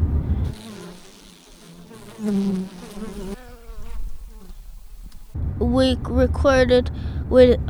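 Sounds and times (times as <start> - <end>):
bees buzzing: 0.0 - 5.4
speech: 2.2 - 2.8, 5.6 - 7.6.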